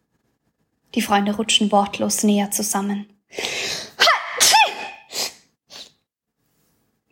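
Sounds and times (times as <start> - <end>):
speech: 1.0 - 3.5
quiet sniffles: 3.4 - 6.0
loud sneeze echoing through corridors: 3.5 - 6.0.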